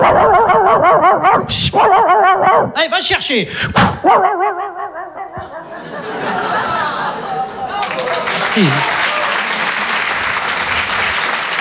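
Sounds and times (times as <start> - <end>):
person imitating a dog barking with their mouth: 0.0 - 5.8, 8.4 - 9.0
speech: 0.9 - 4.4, 8.6 - 8.9
laughter: 4.1 - 11.5.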